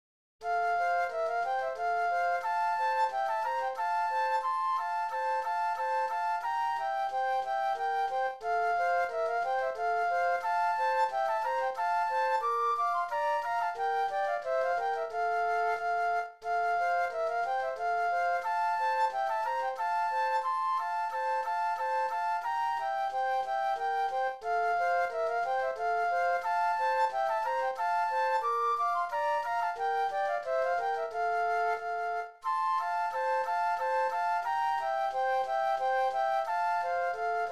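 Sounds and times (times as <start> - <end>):
classical polonaise flute duet: 0.4 - 37.5.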